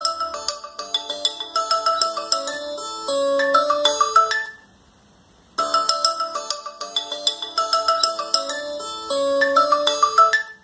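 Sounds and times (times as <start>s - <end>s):
Asus ringtone: 0.0s - 4.7s, 5.6s - 10.6s.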